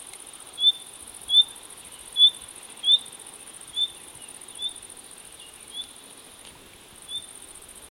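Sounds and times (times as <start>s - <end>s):
constant shrill background hiss: 0.0s - 7.8s
common nightingale Luscinia megarhynchos brief high whistled calls: 0.6s - 6.0s, 7.0s - 7.4s.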